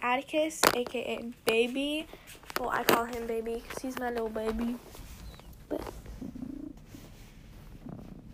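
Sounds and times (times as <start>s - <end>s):
speech: 0.0s - 5.0s, 5.7s - 6.3s
pet cat purring while being petted: 1.8s - 8.3s.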